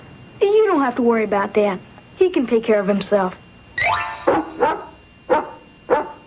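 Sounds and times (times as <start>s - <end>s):
speech: 0.8s - 3.4s
dog barking: 4.3s - 6.2s.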